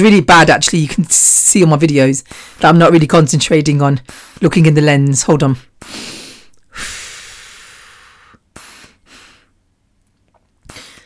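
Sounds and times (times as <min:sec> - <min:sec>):
speech: 0:00.0 - 0:06.2
loud deliberate deep breathing: 0:02.2 - 0:02.6, 0:05.8 - 0:09.6, 0:10.7 - 0:11.0.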